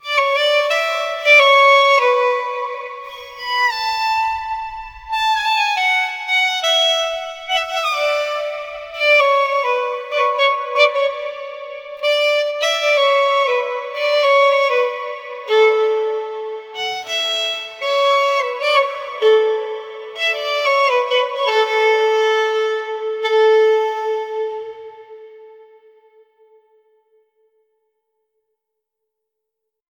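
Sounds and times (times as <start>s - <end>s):
pure solo violin: 0.0s - 26.7s.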